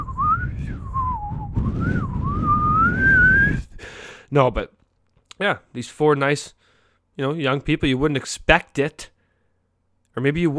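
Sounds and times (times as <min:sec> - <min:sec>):
person whistling a slow gentle lullaby melody: 0:00.0 - 0:03.7
speech: 0:04.3 - 0:04.8, 0:05.4 - 0:06.6, 0:07.2 - 0:09.1, 0:10.2 - 0:10.5.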